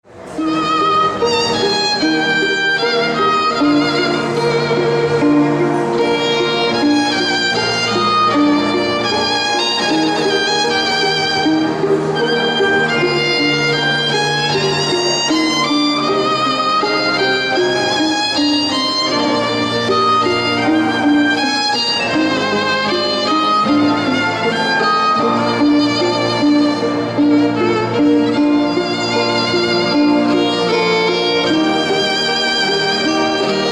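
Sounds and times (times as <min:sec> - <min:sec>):
string quartet: 0:00.0 - 0:33.7.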